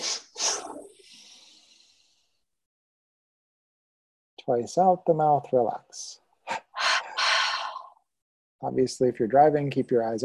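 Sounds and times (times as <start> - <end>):
two quick sharp sniffs through the nose in a breathing exercise: 0.0 - 1.4
speech: 4.4 - 6.6, 8.6 - 10.2.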